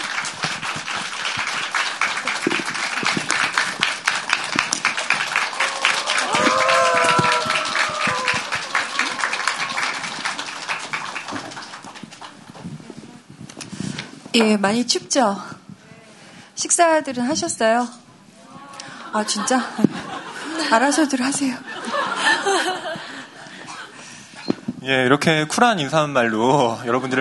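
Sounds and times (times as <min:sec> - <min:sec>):
audience applause welcoming an author: 0:00.0 - 0:12.6
laughter: 0:05.5 - 0:10.6, 0:18.7 - 0:24.0
speech: 0:14.4 - 0:15.5, 0:16.8 - 0:18.0, 0:19.1 - 0:20.0, 0:20.7 - 0:21.7, 0:24.8 - 0:27.1.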